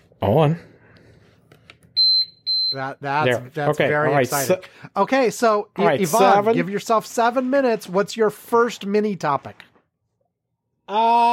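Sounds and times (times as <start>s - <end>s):
speech: 0.2s - 0.7s, 2.7s - 9.7s, 10.9s - 11.3s
electronic timer beeping: 2.0s - 2.9s.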